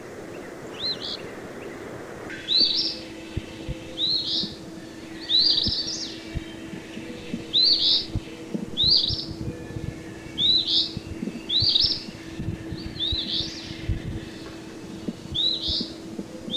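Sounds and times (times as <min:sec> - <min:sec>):
steady low hum: 0:00.0 - 0:16.5
Eastern phoebe hoarse buzzy phrases: 0:02.6 - 0:16.5.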